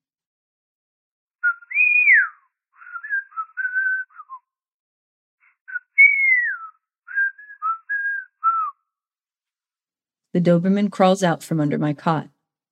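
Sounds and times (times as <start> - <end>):
people whistling a tune behind a door: 1.4 - 4.5, 5.7 - 8.8
speech: 10.3 - 12.3.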